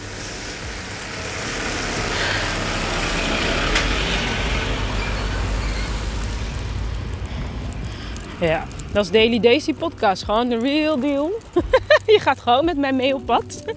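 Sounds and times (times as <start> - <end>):
heavy truck driving past with loud broad engine roar: 0.0 - 12.2
speech: 8.4 - 13.7
laughter: 11.5 - 12.2.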